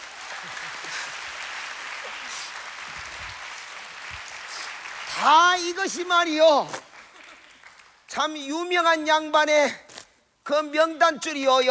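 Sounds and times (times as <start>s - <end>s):
crowd clapping: 0.0s - 8.2s
speech: 5.2s - 6.8s, 8.2s - 9.8s, 10.5s - 11.6s.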